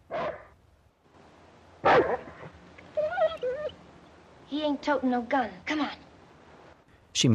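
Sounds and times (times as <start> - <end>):
dog barking: 1.8 - 2.5
dog whimpering: 2.8 - 3.8
speech: 4.6 - 6.0.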